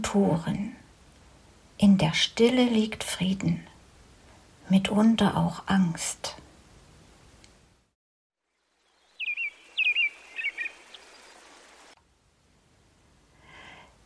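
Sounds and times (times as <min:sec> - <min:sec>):
speech: 0:00.0 - 0:00.8, 0:01.8 - 0:03.7, 0:04.7 - 0:06.4
soft hiss: 0:00.0 - 0:14.0
lone bird singing bright chirps and whistles at dawn: 0:08.6 - 0:11.9.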